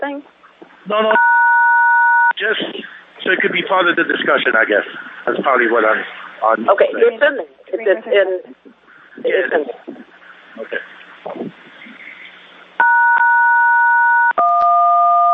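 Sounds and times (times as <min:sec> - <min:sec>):
speech: 0:00.1 - 0:01.4, 0:02.4 - 0:08.6, 0:09.2 - 0:09.8
telephone keypad dialing tones: 0:12.8 - 0:15.3.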